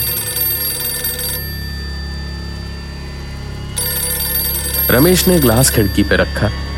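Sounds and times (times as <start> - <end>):
telephone ringing: 0.0 - 2.0, 3.8 - 6.6
steady low hum: 0.0 - 6.7
speech: 4.9 - 6.6.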